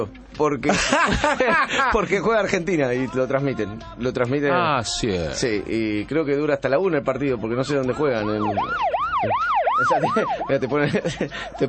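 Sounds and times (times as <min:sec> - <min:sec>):
speech: 0:00.0 - 0:11.6
laughter: 0:00.7 - 0:02.2, 0:09.8 - 0:11.6
emergency vehicle siren wailing: 0:07.9 - 0:10.8.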